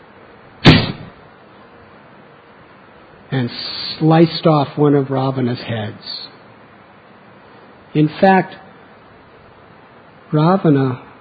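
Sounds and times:
arrow shot in battle swooshing: 0.6 - 1.1
speech: 3.4 - 6.3, 7.9 - 8.6, 10.3 - 11.1.

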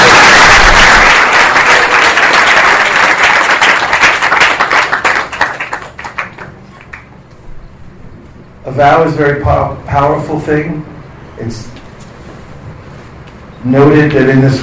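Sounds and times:
crowd applauding at a ceremony: 0.0 - 7.2
speech: 8.8 - 11.7, 13.6 - 14.6.

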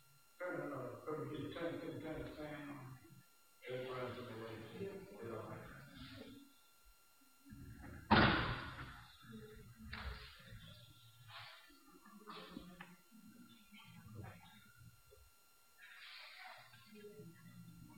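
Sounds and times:
voices talking in the room: 0.4 - 8.1, 8.7 - 17.9
door slamming shut: 8.1 - 8.8.

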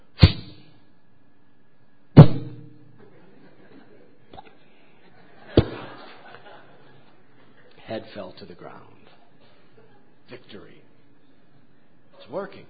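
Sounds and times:
arrow strikes: 0.2 - 0.7, 2.2 - 2.8
laughter: 3.0 - 7.8, 9.2 - 10.3
speech: 8.0 - 9.0, 10.3 - 10.9, 12.3 - 12.6.

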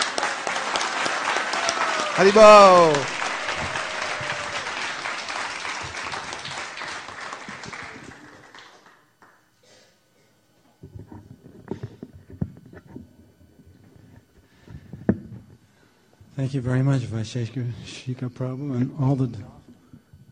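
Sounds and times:
sizable crowd applauding: 0.0 - 9.4
person shouting: 2.0 - 3.2
speech: 2.2 - 3.2, 16.4 - 19.6.

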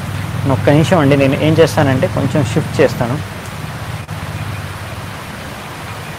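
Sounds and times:
rain falling heavily: 0.0 - 6.1
speech: 0.4 - 3.3.

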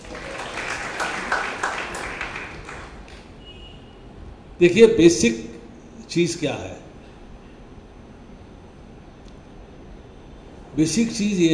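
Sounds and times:
audience applause: 0.0 - 3.3
speech: 4.6 - 5.5, 6.1 - 6.9, 10.8 - 11.5.

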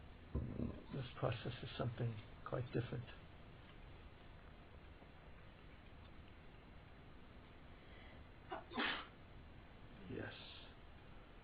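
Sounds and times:
speech: 1.1 - 3.3
person sneezing: 8.5 - 9.1.

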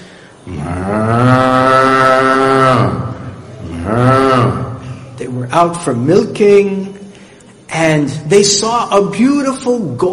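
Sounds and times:
speech: 0.4 - 1.2, 5.6 - 7.0, 7.8 - 10.1
cow mooing in a long low bellow: 0.5 - 4.8.

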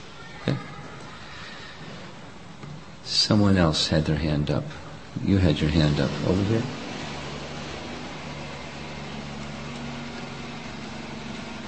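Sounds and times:
speech: 3.3 - 6.8
garbage truck engine idling outside: 5.3 - 11.6.

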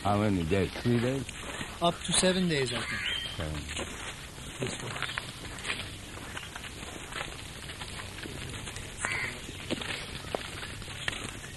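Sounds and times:
speech: 0.0 - 5.8
steady hissy outdoor background: 0.0 - 11.5
crows cawing at a bird sanctuary: 2.6 - 3.6, 8.9 - 11.4.

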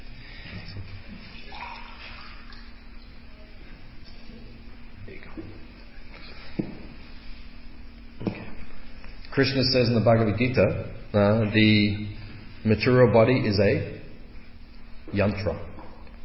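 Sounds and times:
water poured into a glass: 1.4 - 2.7
speech: 9.4 - 14.0, 15.1 - 15.7.

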